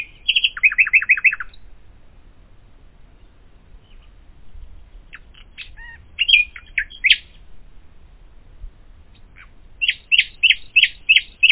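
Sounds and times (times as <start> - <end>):
common nightingale song: 0.0 - 2.2, 2.8 - 11.5.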